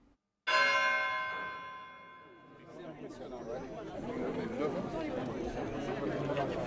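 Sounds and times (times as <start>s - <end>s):
church bell strike: 0.5s - 2.6s
crowd chatter: 2.1s - 6.6s.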